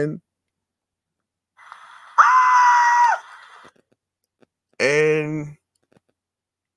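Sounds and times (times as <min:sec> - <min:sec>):
speech: 0:00.0 - 0:00.3, 0:04.8 - 0:05.6
human scream, high-pitched shriek: 0:02.2 - 0:03.3.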